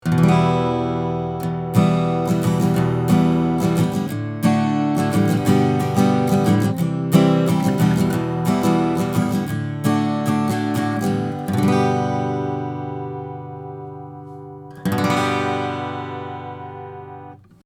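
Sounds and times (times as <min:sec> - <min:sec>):
acoustic guitar at 15th fret recorded with AKG C12 microphone: 0:00.0 - 0:17.6.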